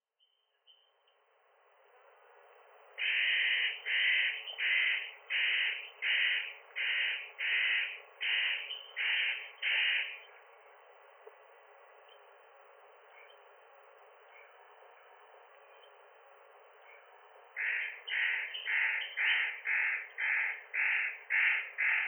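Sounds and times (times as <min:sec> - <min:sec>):
Spotted Nutcracker calling: 0:03.0 - 0:10.3, 0:17.6 - 0:22.0.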